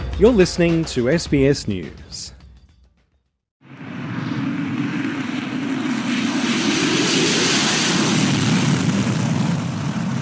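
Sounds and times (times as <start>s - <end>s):
speech: 0.2s - 2.4s
United States F-35 stealth fighter jet taking off from Gunsan, South Korea: 3.6s - 10.2s.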